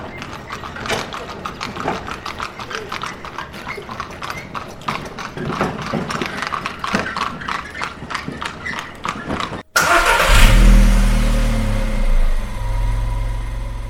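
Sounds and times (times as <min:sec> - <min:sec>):
horse hooves clip-clopping: 0:00.0 - 0:09.6
motor car engine revving and idling: 0:09.8 - 0:13.8.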